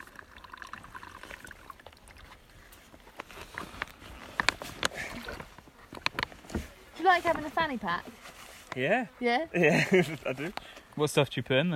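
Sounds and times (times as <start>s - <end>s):
water drips: 0.0s - 3.1s
water pouring through a filter: 0.0s - 3.6s
speech: 7.1s - 8.2s, 8.8s - 11.7s.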